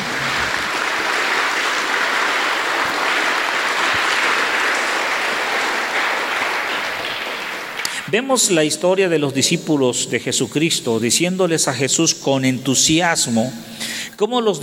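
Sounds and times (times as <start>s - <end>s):
large audience applauding loudly: 0.0s - 8.2s
speech: 8.1s - 14.6s.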